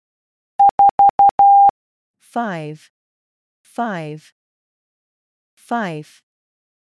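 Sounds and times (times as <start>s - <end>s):
mid-pitched Morse code tone beeps: 0.6s - 1.7s
speech: 2.3s - 3.0s, 3.8s - 4.4s, 5.6s - 6.2s.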